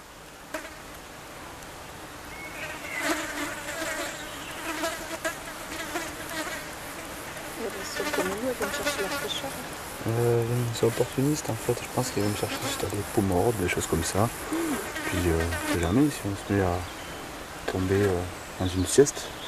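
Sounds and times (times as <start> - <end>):
swarm of flies buzzing: 0.0 - 1.0, 2.4 - 19.4
faint voice murmuring: 7.6 - 16.8
speech: 8.5 - 17.0, 17.7 - 19.4.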